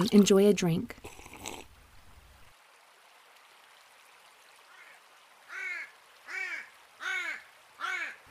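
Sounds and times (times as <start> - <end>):
speech: 0.0 - 1.1
large black ravens cawing harshly: 4.7 - 8.3.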